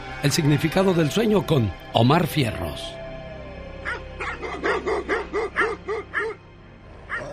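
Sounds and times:
speech: 0.2 - 3.0
rabid dog barking: 3.8 - 6.4, 7.1 - 7.3.

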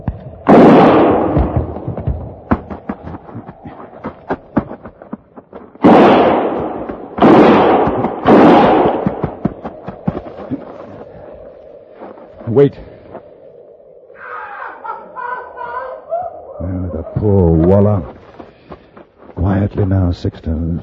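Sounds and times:
loud gunshots with long rumbling tails: 0.4 - 2.1, 5.8 - 9.6
lighter gunshot cracks and pops: 0.5 - 1.4, 5.8 - 9.4
speech: 12.6 - 12.9, 19.8 - 20.8
laughter: 14.4 - 17.6.

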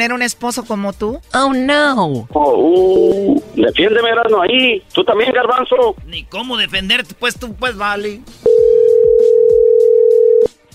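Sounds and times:
speech: 0.0 - 8.6
telephone tone on a call being dialed: 8.4 - 10.6.

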